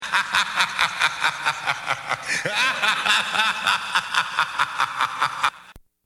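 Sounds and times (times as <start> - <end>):
maniacal laugh: 0.0 - 5.8.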